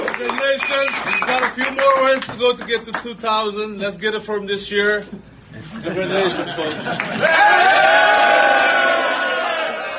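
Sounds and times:
crowd cheering after a baseball game: 0.0s - 1.8s, 6.8s - 9.9s
speech: 0.2s - 8.2s
laughter: 5.6s - 7.5s.

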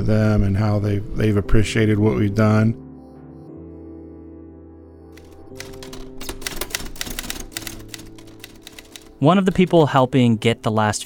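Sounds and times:
speech: 0.0s - 2.8s, 9.2s - 11.0s
mechanical typewriter keystrokes clattering: 5.2s - 9.9s.

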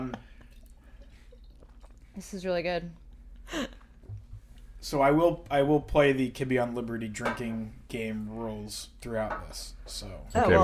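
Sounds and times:
beer pouring in a steady quiet stream with soft gurgling: 0.0s - 3.1s
speech: 2.2s - 3.8s, 4.8s - 10.6s.

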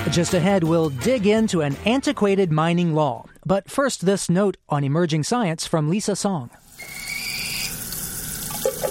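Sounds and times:
speech: 0.1s - 6.6s
faucet water splashing into a sink: 6.6s - 8.8s
brief higher squeaks: 6.8s - 7.8s.

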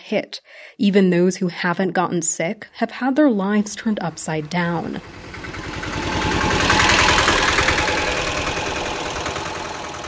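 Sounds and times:
speech: 0.1s - 6.0s
small motorcycle engines idling at a hospital entrance in Kilifi Kenya: 3.7s - 10.0s.

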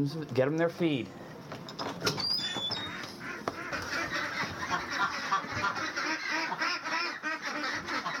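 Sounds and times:
speech: 0.0s - 2.2s
small birds chirping: 2.2s - 5.1s
pastured ducks on a ranch quacking as they are let out: 2.6s - 8.1s.

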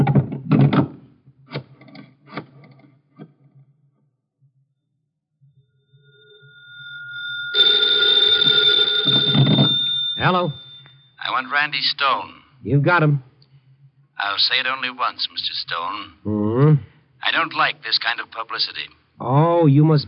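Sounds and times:
sharp knocks and clatters: 0.0s - 3.6s
telephone bell ringing loudly: 5.9s - 11.8s
speech: 11.4s - 13.3s, 14.2s - 20.0s.

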